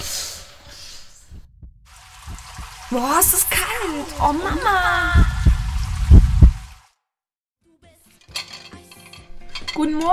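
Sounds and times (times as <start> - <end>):
water running from a tap: 1.9 - 6.9
speech: 2.9 - 5.3, 9.8 - 10.1
dishes clinking and clattering: 8.2 - 10.1.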